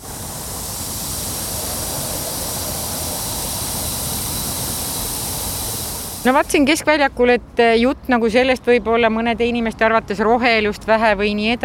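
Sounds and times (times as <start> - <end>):
fog fountain spraying mist into the air: 0.0 - 6.8
speech: 6.2 - 11.6.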